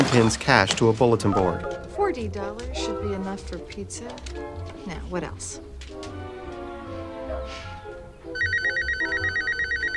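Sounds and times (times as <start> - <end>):
speech: 0.1 - 6.2, 7.4 - 7.7
telephone ringing with a loud rapid electronic trill: 8.4 - 9.9.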